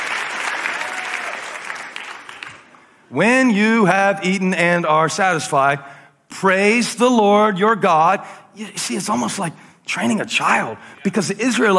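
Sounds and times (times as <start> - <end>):
large audience clapping: 0.0 - 2.8
speech: 3.1 - 11.7.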